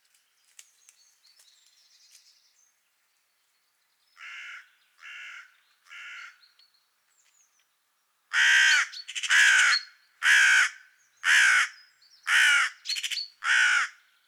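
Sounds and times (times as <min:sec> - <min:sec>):
Corvus corone carrion crow giving harsh caws: 0:04.2 - 0:06.4, 0:08.3 - 0:12.8, 0:13.4 - 0:14.0.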